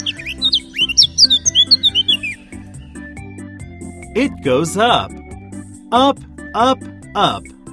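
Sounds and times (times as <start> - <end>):
bird chirping: 0.0 - 3.0
soft low musical backing: 0.0 - 7.7
speech: 4.2 - 5.2, 5.9 - 7.5.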